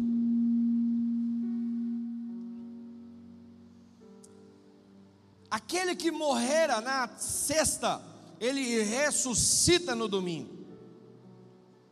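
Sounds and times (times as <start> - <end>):
loud microphone feedback tone: 0.0 - 3.3
speech: 5.5 - 10.6.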